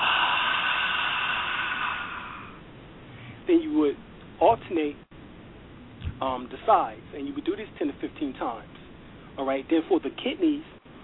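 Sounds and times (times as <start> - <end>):
forceful exhale through the mouth with a ha sound in alternate-nostril breathing: 0.0 - 3.4
speech: 3.5 - 5.1, 6.2 - 8.8, 9.4 - 10.7.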